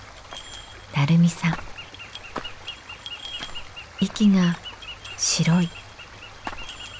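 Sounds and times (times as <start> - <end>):
small birds chirping at dusk in a forest at Kamikochi: 0.0 - 6.9
walking steps: 0.1 - 6.9
bear bell jingling: 0.3 - 1.2, 3.0 - 3.7, 4.8 - 6.9
speech: 1.0 - 1.7, 4.0 - 4.6, 5.2 - 5.8.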